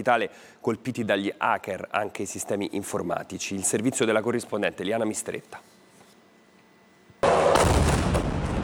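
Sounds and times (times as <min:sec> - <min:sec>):
speech: 0:00.0 - 0:05.8
loud boom of Ukrainian drone strike on a Russian refinery: 0:07.2 - 0:08.6
rumbling roar of explosions at a Russian oil refinery: 0:07.6 - 0:08.6.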